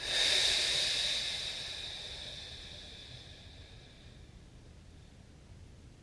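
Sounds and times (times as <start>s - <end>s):
slow deep breath through the nose during a guided relaxation exercise: 0.0s - 4.2s.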